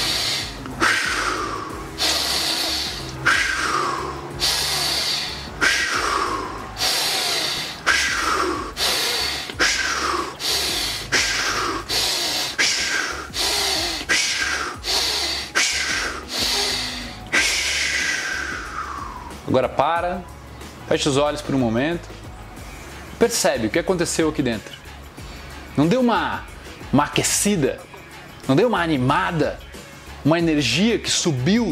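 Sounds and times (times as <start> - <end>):
deep inhale then rapid exhale through the mouth in a breathing exercise: 0.0 - 19.4, 25.0 - 25.8
low constant hum: 0.0 - 31.7
speech: 19.8 - 22.2, 23.2 - 24.8, 25.8 - 27.9, 28.5 - 29.6, 30.2 - 31.7.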